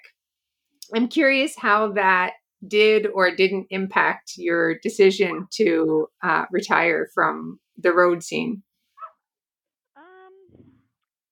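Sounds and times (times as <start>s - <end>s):
speech: 0.9s - 8.7s
small dog barking: 9.0s - 9.2s.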